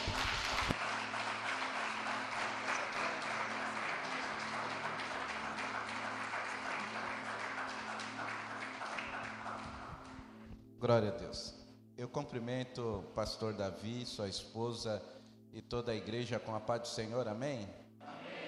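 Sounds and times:
church audience applauding loudly: 0.0 - 10.4
speech: 10.8 - 17.8.

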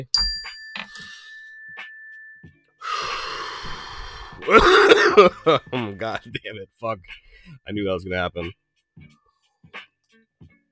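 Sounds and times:
speech: 0.0 - 0.6, 4.5 - 9.2
mindfulness bell chime: 0.0 - 2.7
breathy gasps: 2.8 - 4.6
rough burst of breath or coughing: 4.4 - 5.4
laughter: 4.9 - 6.4.

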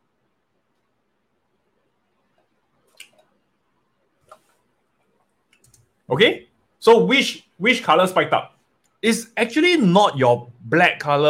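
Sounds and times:
person sipping water: 2.8 - 3.4
speech: 6.1 - 11.2.

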